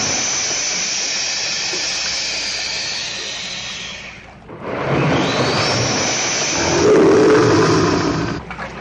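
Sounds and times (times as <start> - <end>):
adult alligator hissing: 0.1 - 4.3, 5.8 - 8.4
adult alligator roaring: 6.5 - 8.5.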